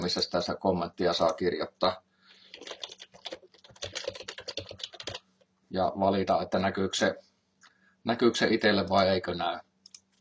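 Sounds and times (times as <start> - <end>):
speech: 0.0 - 2.8, 5.7 - 7.3, 8.0 - 9.7
typing on a computer keyboard: 2.5 - 5.2.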